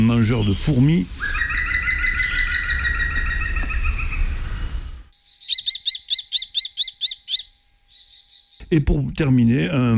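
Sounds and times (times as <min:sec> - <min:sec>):
speech: 0:00.0 - 0:01.6, 0:08.7 - 0:09.9
dense buzzy sound: 0:00.0 - 0:09.9
green woodpecker laughing call: 0:01.2 - 0:08.7.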